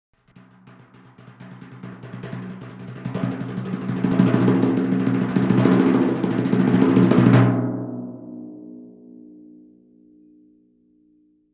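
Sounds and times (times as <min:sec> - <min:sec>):
timpani struck with hands: 0:00.2 - 0:08.0.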